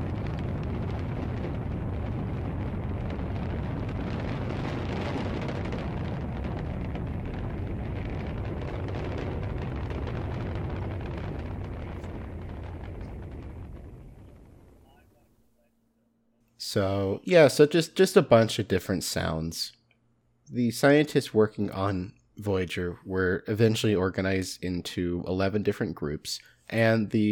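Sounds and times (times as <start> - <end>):
rocket launch rumble: 0.0 - 15.3
speech: 16.7 - 19.8, 20.5 - 27.3.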